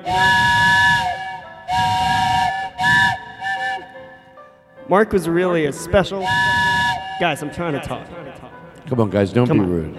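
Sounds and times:
speech: 0:00.0 - 0:00.4, 0:04.9 - 0:09.9
steam train whistle: 0:00.0 - 0:04.4, 0:06.2 - 0:07.6.

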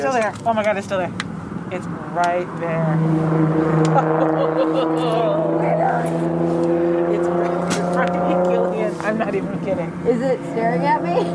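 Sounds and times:
car engines rumbling: 0:00.0 - 0:11.3
speech: 0:00.0 - 0:11.3
laughter: 0:03.8 - 0:05.6.

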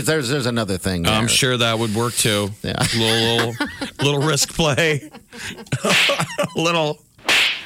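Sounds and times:
speech: 0:00.0 - 0:07.1
laughter: 0:02.8 - 0:06.8
voice imitating a slap with hissing whip-like bursts: 0:05.9 - 0:06.3, 0:07.2 - 0:07.6.

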